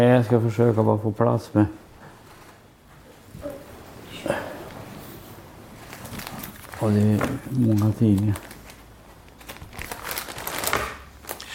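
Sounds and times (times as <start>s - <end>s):
speech: 0.0s - 1.8s, 6.8s - 8.5s
paper pages of newspaper clippings turned in a binder: 4.8s - 11.4s.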